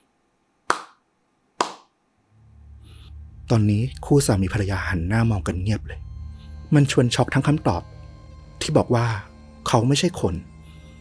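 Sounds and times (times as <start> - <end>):
sharp loud hand claps outside with tail: 0.7 - 1.0, 1.6 - 1.9
low steady rumble: 2.3 - 10.9
speech: 3.5 - 6.0, 6.7 - 8.0, 8.7 - 10.5.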